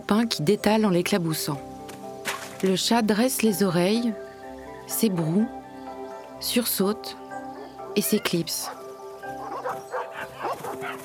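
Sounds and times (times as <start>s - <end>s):
speech: 0.1s - 1.7s, 2.6s - 4.2s, 4.9s - 5.6s, 6.4s - 7.2s, 8.0s - 8.8s
pack of dogs barking while chasing a rabbit through fog: 7.6s - 11.0s.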